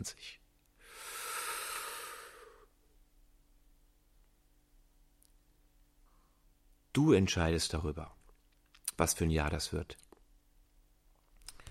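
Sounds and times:
speech: 0:00.0 - 0:00.4, 0:07.0 - 0:08.2, 0:09.0 - 0:10.0
slow deep breath with hissing airflow: 0:00.8 - 0:02.8.

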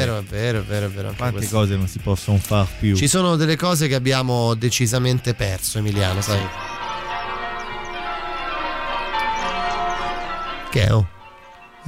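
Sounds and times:
speech: 0:00.1 - 0:06.8, 0:10.8 - 0:11.1
several bells ringing together: 0:05.0 - 0:11.8.

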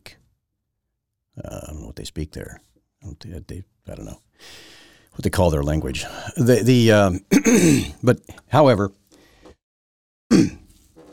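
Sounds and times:
speech: 0:01.8 - 0:09.0, 0:10.3 - 0:10.6
man clearing throat: 0:07.3 - 0:08.0, 0:10.3 - 0:10.7.

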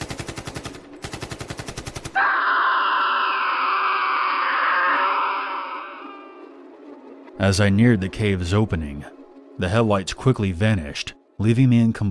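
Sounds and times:
bursts of automatic gunfire: 0:00.0 - 0:02.2
person screaming: 0:02.2 - 0:06.4
speech: 0:07.4 - 0:12.0.

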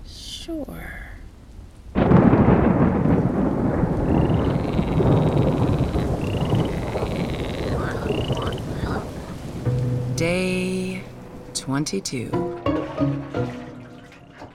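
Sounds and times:
heavy rain pouring: 0:00.0 - 0:14.5
speech: 0:00.5 - 0:01.1, 0:11.7 - 0:13.6
deep rumbling thunder: 0:01.9 - 0:10.3
frogs croaking: 0:02.0 - 0:10.4.

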